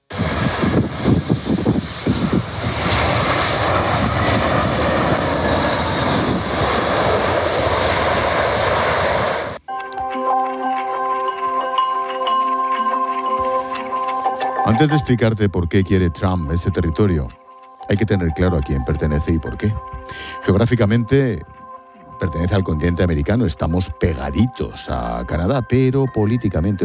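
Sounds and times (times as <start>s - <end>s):
airplane engine in flight: 0.0s - 26.8s
sustained tonal hums: 0.0s - 26.8s
speech: 14.8s - 21.6s, 22.2s - 26.8s.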